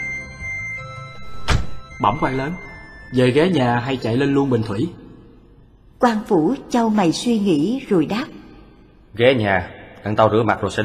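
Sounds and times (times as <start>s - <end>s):
car door shutting: 1.3s - 1.8s
speech: 2.0s - 5.0s, 6.0s - 8.4s, 9.2s - 10.8s.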